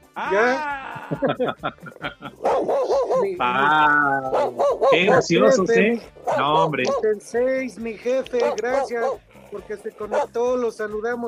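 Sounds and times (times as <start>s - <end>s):
laughter: 0.2s - 7.0s
speech: 0.2s - 11.2s
dog barking: 2.2s - 7.2s, 8.3s - 9.4s, 10.0s - 10.5s
dog whine-like yelp: 2.3s - 7.1s, 8.4s - 10.4s.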